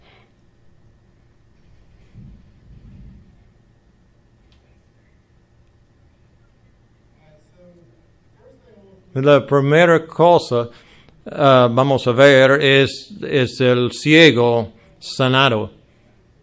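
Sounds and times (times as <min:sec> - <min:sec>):
roll of thunder rumbling: 0:02.1 - 0:03.6
steady storm noise: 0:02.1 - 0:03.6
speech: 0:09.2 - 0:15.8.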